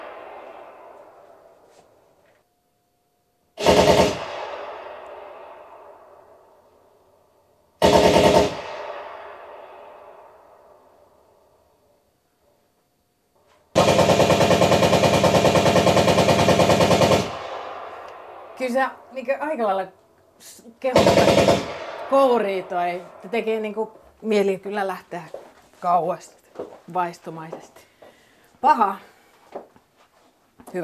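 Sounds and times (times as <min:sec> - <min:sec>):
recorded machine gun fire from wartime defensive line nests: 0:00.0 - 0:01.5, 0:03.6 - 0:06.5, 0:07.8 - 0:11.0, 0:13.8 - 0:19.1, 0:20.9 - 0:23.7
speech: 0:18.7 - 0:27.9, 0:28.6 - 0:29.7.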